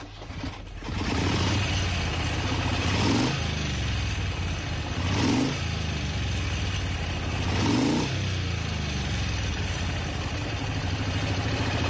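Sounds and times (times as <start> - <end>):
motorcycle engine revving: 0.0 - 11.8.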